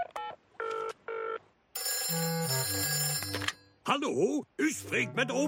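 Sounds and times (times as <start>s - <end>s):
long ringing tones of an outgoing telephone call: 0.2s - 3.6s
speech: 3.9s - 5.4s.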